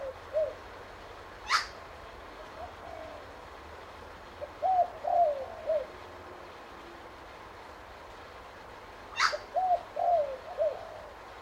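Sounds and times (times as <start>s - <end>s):
spotted dove cooing: 0.0s - 0.7s, 1.4s - 3.6s, 4.4s - 7.0s, 9.2s - 11.4s.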